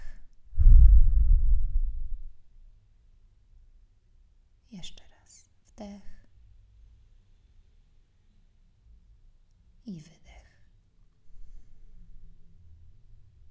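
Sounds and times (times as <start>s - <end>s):
slow deep exhale: 0.0s - 2.3s.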